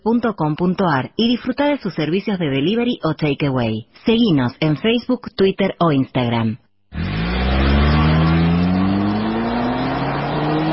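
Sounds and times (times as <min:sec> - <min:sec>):
speech: 0:00.0 - 0:06.6
car engines screaming at very high revs: 0:06.9 - 0:10.7.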